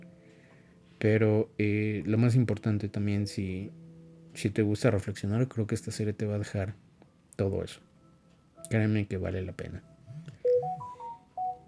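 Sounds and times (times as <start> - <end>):
speech: 1.0 - 3.8, 4.4 - 7.9, 8.6 - 9.9
cellphone message notification tone: 9.9 - 11.6.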